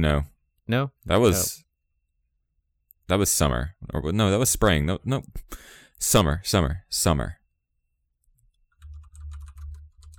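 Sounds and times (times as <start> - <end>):
speech: 0.0 - 1.7, 3.1 - 7.4
rapid typing on a computer keyboard: 8.7 - 10.1.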